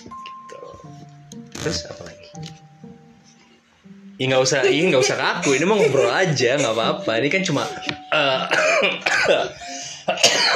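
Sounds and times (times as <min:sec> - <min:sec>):
speech: 0:01.6 - 0:02.5, 0:04.2 - 0:09.6
laughter: 0:04.6 - 0:10.5
person coughing harshly: 0:08.1 - 0:10.5.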